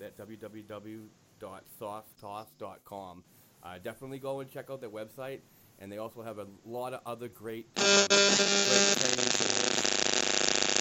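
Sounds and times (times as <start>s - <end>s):
speech: 0.2s - 10.0s
electrical interference buzzing hum: 7.8s - 10.8s.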